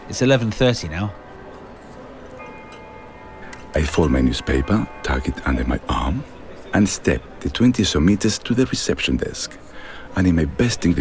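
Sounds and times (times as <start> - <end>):
speech: 0.1 - 1.2, 3.8 - 11.0
grandfather clock chiming: 2.4 - 7.3.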